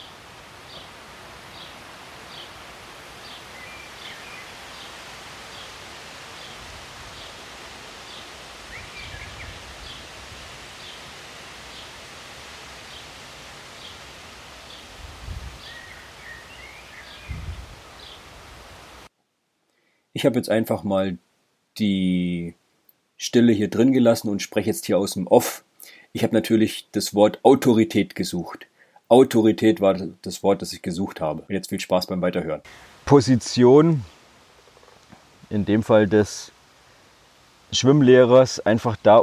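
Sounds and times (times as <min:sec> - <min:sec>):
leaves rustling in the wind outdoors: 0:00.0 - 0:19.1, 0:32.0 - 0:39.2
bird chirping in short calls: 0:00.7 - 0:00.9, 0:01.5 - 0:02.6, 0:03.2 - 0:05.8, 0:08.1 - 0:10.1, 0:15.6 - 0:18.3
speech: 0:20.2 - 0:22.6, 0:23.2 - 0:34.2, 0:35.5 - 0:36.6, 0:37.7 - 0:39.2.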